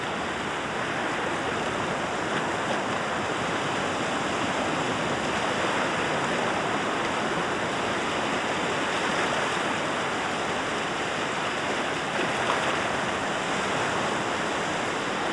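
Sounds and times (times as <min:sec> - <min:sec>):
waves on Lake Michigan washing against the shore: 0:00.0 - 0:15.3.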